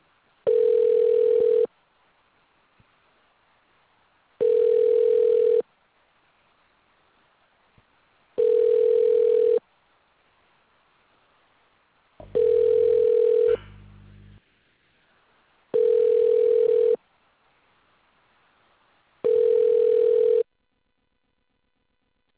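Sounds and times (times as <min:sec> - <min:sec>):
low-pitched telephone ringback tone while calling: 0:00.5 - 0:01.7, 0:04.4 - 0:05.6, 0:08.4 - 0:09.6, 0:12.2 - 0:13.8, 0:15.8 - 0:17.0, 0:19.2 - 0:20.5.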